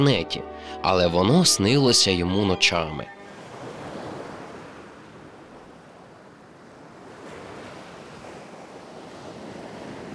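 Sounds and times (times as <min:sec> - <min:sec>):
speech: 0:00.0 - 0:03.2
faint wind noise: 0:03.2 - 0:10.1
surf rushing and hissing against the shore: 0:03.2 - 0:10.1.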